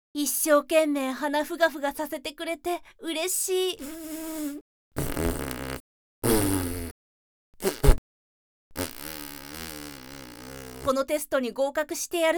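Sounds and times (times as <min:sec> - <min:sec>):
speech: 0:00.2 - 0:04.6, 0:10.9 - 0:12.3
farts: 0:04.0 - 0:07.0, 0:07.6 - 0:08.0, 0:08.7 - 0:10.9.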